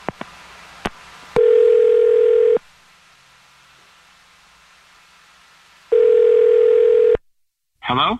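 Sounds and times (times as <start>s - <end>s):
telephone ringback tones: 1.4s - 2.6s, 5.9s - 7.2s.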